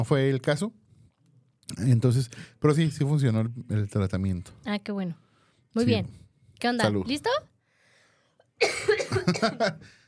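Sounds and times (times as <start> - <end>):
speech: 0.0 - 0.8, 1.7 - 7.5, 8.6 - 10.0
faint breath: 5.2 - 6.5, 7.6 - 8.4, 9.8 - 10.0
rapid coughing fit: 8.6 - 9.8.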